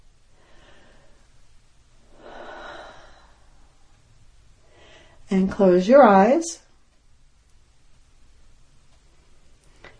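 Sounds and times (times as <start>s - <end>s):
low hiss: 0.0s - 9.9s
deep breath during a guided relaxation exercise: 0.3s - 4.0s, 4.6s - 5.3s
speech: 5.3s - 6.6s.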